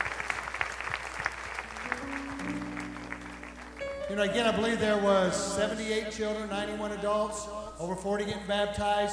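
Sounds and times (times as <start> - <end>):
congregation applauding: 0.0 - 5.4
sustained organ or keyboard chord: 1.4 - 9.1
speech: 4.1 - 9.1.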